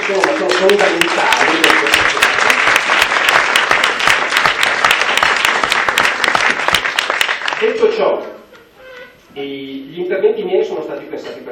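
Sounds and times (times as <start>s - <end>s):
sizable audience applauding: 0.0s - 7.8s
speech: 0.1s - 2.0s, 7.6s - 8.3s, 9.4s - 11.5s.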